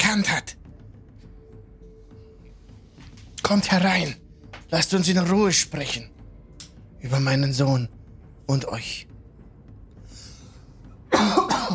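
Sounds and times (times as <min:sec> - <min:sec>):
speech: 0:00.2 - 0:00.6, 0:03.5 - 0:06.2, 0:07.0 - 0:09.1
person coughing: 0:11.1 - 0:11.7.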